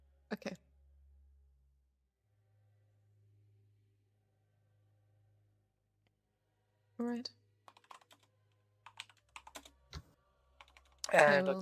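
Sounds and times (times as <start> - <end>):
speech: 0.3 - 0.7, 7.0 - 7.4, 11.1 - 11.6
typing on a computer keyboard with caps lock on: 7.7 - 9.8, 10.6 - 11.1.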